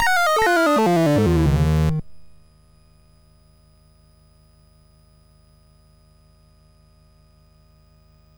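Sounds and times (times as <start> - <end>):
game music on SID MOS6581R3 chip: 0.0 - 2.1.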